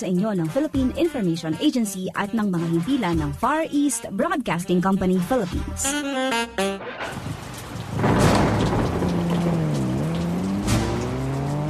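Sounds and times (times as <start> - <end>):
speech: 0.0 - 7.3
heavy rain pouring: 7.0 - 11.6
passing car engine humming: 8.7 - 11.6.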